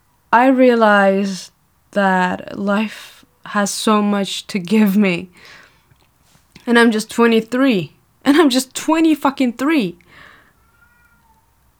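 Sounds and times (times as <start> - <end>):
speech: 0.3 - 5.6, 6.6 - 10.3
cat meowing: 10.1 - 11.6.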